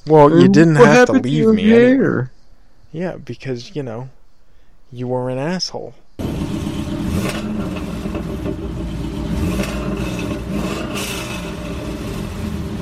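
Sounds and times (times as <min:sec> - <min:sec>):
speech: 0:00.0 - 0:04.2, 0:04.9 - 0:06.3
car engine revving: 0:06.2 - 0:12.8.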